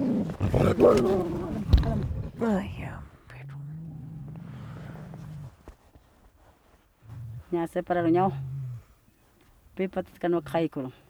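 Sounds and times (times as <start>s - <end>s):
dog growling: 0.0s - 5.6s, 7.1s - 9.0s
speech: 0.8s - 1.4s, 2.0s - 3.0s, 7.5s - 8.5s, 9.8s - 11.0s.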